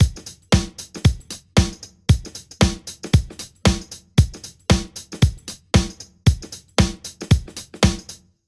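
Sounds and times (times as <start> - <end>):
drum with reverb: 0.0 - 8.2.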